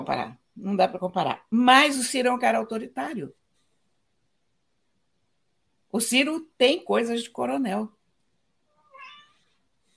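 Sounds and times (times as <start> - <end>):
speech: 0.0 - 3.4, 5.9 - 8.0
cat meowing: 8.7 - 9.6.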